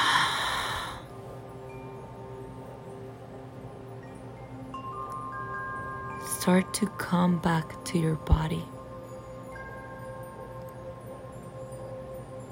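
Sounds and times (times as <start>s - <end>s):
person breathing in through the nose and out through the mouth during a guided exercise: 0.0s - 1.2s
speech: 6.4s - 8.8s.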